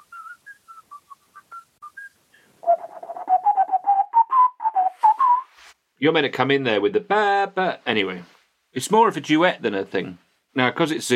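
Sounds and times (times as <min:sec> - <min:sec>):
person whistling a TV theme tune: 0:00.0 - 0:05.6
speech: 0:06.0 - 0:11.1.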